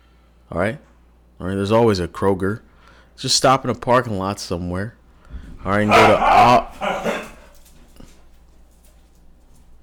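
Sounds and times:
steady low hum: 0.0 - 9.8
speech: 0.5 - 6.9
dogs whimpering and barking: 5.8 - 7.6.

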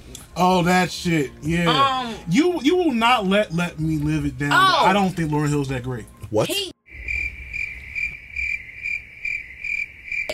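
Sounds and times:
speech: 0.4 - 6.7
crickets chirping: 6.9 - 10.3.

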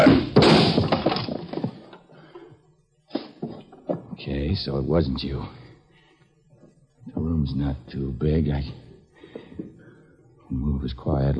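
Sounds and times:
lamp glass breaking: 0.0 - 1.9
lamp smashing: 0.0 - 2.0
speech: 4.5 - 5.6, 7.1 - 8.8, 10.5 - 11.3.

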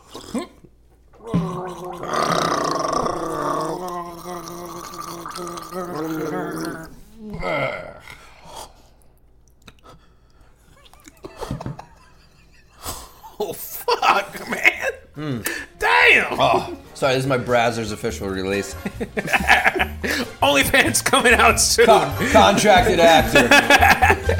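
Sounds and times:
person gargling chocolate milk: 0.0 - 8.2
laughter: 11.2 - 14.9, 18.8 - 21.1, 22.1 - 24.3
speech: 17.0 - 19.4, 20.0 - 24.1.

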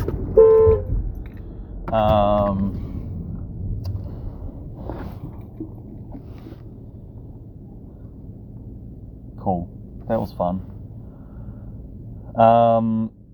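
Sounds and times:
steady rumble of street traffic: 0.0 - 13.3
loud car horn honks: 0.1 - 1.0
speech: 2.0 - 2.8, 9.5 - 10.7, 12.4 - 13.2.

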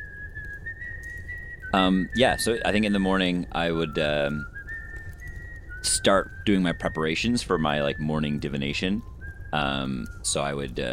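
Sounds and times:
person whistling a sustained high note: 0.0 - 3.0, 3.6 - 10.9
low rumble: 0.0 - 10.9
speech: 1.7 - 4.5, 5.9 - 10.9.

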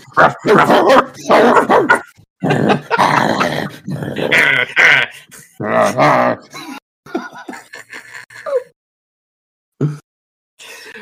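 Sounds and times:
several people imitating dogs barking yipping and growling: 0.0 - 6.6
laughter: 0.2 - 8.7.

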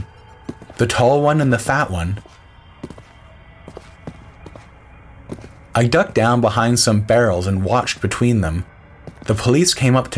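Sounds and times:
footsteps approaching at walking pace: 0.0 - 6.7, 9.0 - 9.5
speech: 0.8 - 2.3, 5.8 - 8.7, 9.3 - 10.1.

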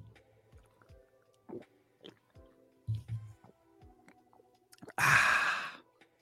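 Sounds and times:
close-miked wet mouth smacks and clicks: 4.0 - 5.0.

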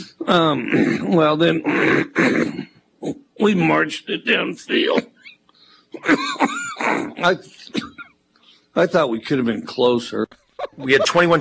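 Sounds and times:
speech: 0.3 - 5.1, 6.0 - 7.9, 8.8 - 11.4
deliberate exaggerated cough: 0.5 - 2.8, 6.0 - 8.2
laughter: 10.3 - 11.4.

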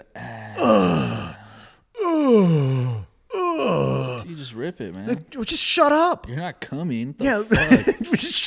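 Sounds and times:
man imitating an old man groaning while urinating: 0.0 - 4.3
speech: 4.4 - 8.4
laughter: 7.2 - 8.4.

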